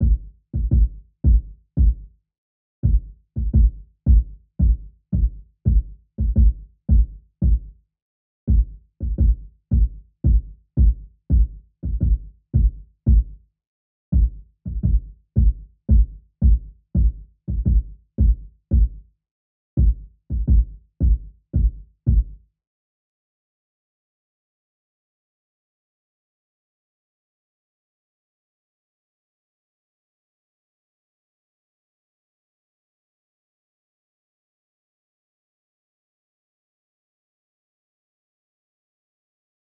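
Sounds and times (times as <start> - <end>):
170 BPM G minor RnB kick drum loop: 0.0 - 2.1, 2.8 - 7.7, 8.5 - 13.4, 14.1 - 19.0, 19.8 - 22.4.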